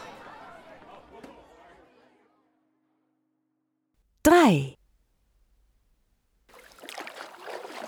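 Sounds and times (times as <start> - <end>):
speech: 4.5 - 4.7
shoe splashing into water: 6.5 - 7.8.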